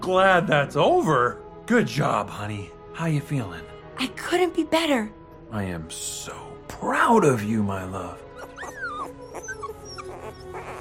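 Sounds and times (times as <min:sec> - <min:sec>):
speech: 0:00.0 - 0:08.8
newborn puppies whimpering: 0:08.3 - 0:10.8.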